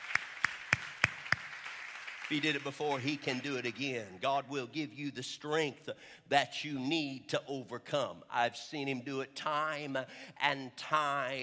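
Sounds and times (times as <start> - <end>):
congregation clapping hands in unison: 0.0 - 4.2
speech: 2.3 - 11.4.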